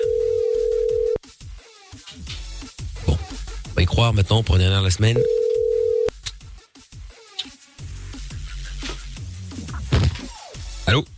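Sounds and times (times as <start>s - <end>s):
telephone dial tone: 0.0s - 1.2s, 5.2s - 6.1s
speech: 3.8s - 5.4s.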